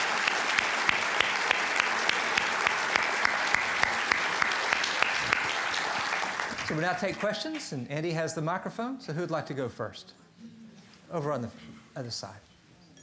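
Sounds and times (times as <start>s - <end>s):
room full of people clapping: 0.0s - 7.7s
speech: 6.7s - 10.2s, 11.1s - 12.5s.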